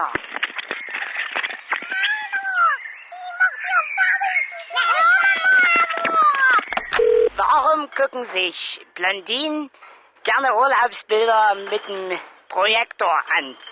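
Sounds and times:
speech: 0.0s - 0.2s, 7.9s - 13.7s
noise: 0.0s - 13.7s
birds whistling and chirping heard over a phone: 0.7s - 5.1s.

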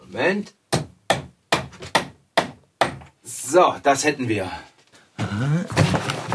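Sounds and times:
speech: 0.1s - 0.6s, 3.5s - 4.7s, 5.4s - 5.8s
hammer hitting a nail into a wall to hang a cuckoo clock: 0.7s - 3.1s.

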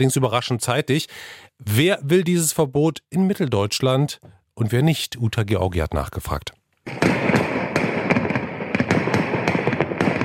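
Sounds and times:
speech: 0.0s - 7.1s
New Year's Eve firecrackers exploding: 6.9s - 10.2s.

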